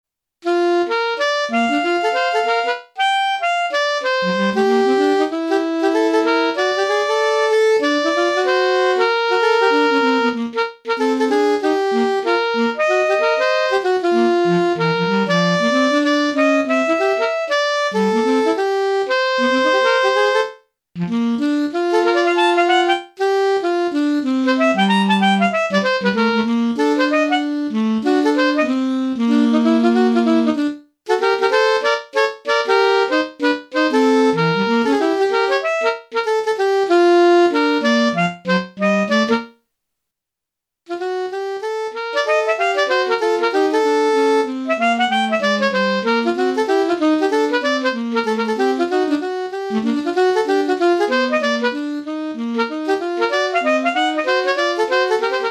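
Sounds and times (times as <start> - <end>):
alto saxophone duet playing standards: 0.4 - 39.6, 40.9 - 55.4.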